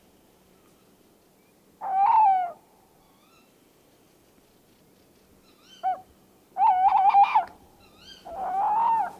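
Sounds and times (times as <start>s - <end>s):
tawny owl Strix aluco hooting: 1.8s - 3.5s, 5.5s - 9.1s.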